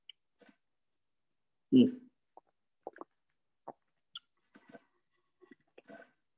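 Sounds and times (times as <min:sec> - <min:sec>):
person sipping and swallowing water: 0:02.3 - 0:06.3
soft wet mouth clicks: 0:02.4 - 0:04.3.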